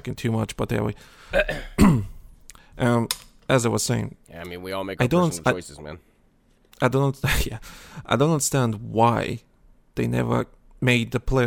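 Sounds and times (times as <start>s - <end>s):
speech: 0.0s - 2.1s, 2.8s - 6.1s, 6.8s - 11.4s
person clearing throat: 1.3s - 2.2s.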